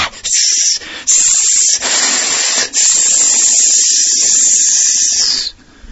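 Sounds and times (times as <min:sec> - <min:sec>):
voice imitating a snake spitting out poison: 0:00.0 - 0:05.6.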